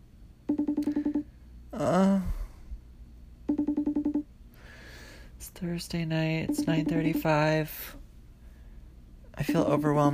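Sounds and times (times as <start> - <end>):
outgoing phone call ringing with trilling electronic pulses: 0.5 - 1.3, 3.5 - 4.3, 6.4 - 7.4, 9.4 - 10.1
speech: 1.8 - 2.3, 5.4 - 8.0, 9.4 - 10.1.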